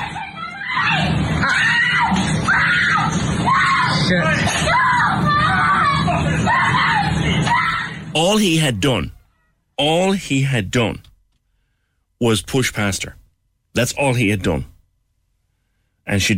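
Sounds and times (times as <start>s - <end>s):
woman screaming and roaring in anguished wailing: 0.0s - 8.0s
speech: 4.1s - 4.9s, 8.2s - 9.2s, 9.8s - 11.1s, 12.2s - 13.2s, 13.8s - 14.7s, 16.1s - 16.3s.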